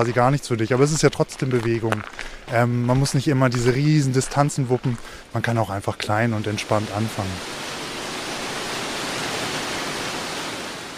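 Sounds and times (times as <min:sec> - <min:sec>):
speech: 0:00.0 - 0:07.6
waterfall pouring into the first large pool of a waterfall: 0:06.4 - 0:10.9.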